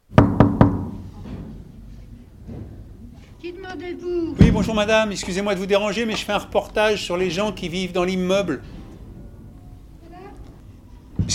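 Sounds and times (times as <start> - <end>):
knocking on an apartment door: 0.1 - 1.6, 4.4 - 5.0
speech: 3.4 - 8.8.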